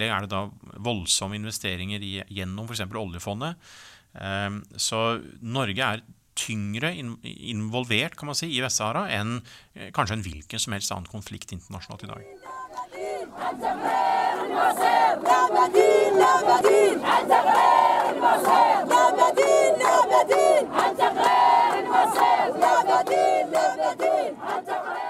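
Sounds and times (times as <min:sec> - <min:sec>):
speech: 0:00.0 - 0:25.0
large crowd chanting protest slogans in unison: 0:12.2 - 0:25.0.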